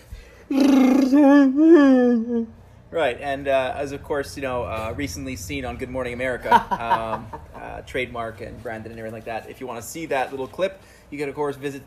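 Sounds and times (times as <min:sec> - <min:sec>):
Wookiee roar: 0:00.5 - 0:01.2
speech: 0:00.5 - 0:11.8
laughter: 0:06.4 - 0:07.8.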